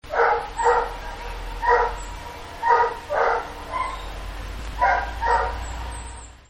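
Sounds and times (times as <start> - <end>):
dog barking: 0.1 - 4.1, 4.8 - 5.9.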